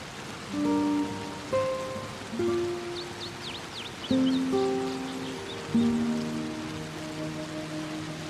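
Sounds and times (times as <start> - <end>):
light rain falling: 0.0 - 8.2
gentle sustained musical notes: 0.5 - 8.2
faint bird chirps: 2.4 - 8.2.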